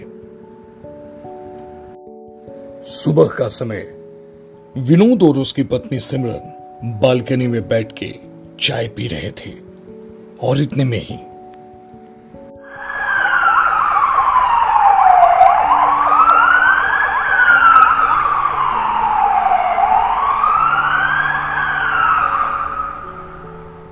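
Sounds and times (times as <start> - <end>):
speech: 2.9 - 4.0, 4.8 - 9.6, 10.4 - 11.3
ambulance siren wailing: 12.6 - 23.8.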